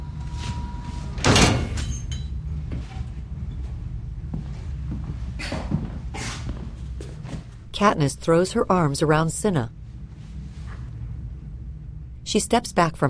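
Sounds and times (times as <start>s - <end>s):
low rumble: 0.0s - 13.0s
heavy metal door sliding and shutting: 1.2s - 2.3s
speech: 7.8s - 9.8s, 12.3s - 13.0s.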